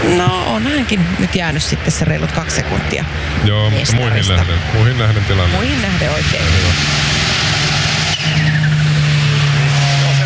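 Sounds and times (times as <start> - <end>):
rally car engine roaring at stage finish: 0.0 - 10.2
speech: 0.1 - 7.1
rally car tires skidding while braking hard: 2.5 - 10.2.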